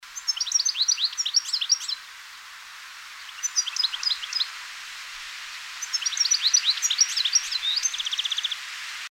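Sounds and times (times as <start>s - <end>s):
background hiss: 0.0s - 9.0s
European goldfinch Carduelis carduelis twittering calls: 0.1s - 2.2s, 3.2s - 4.6s, 5.5s - 8.6s.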